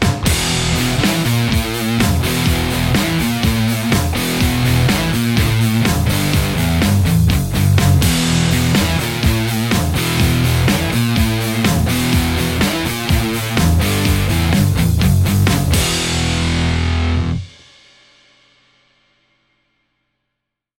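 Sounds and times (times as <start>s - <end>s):
electric guitar: 0.2s - 17.5s.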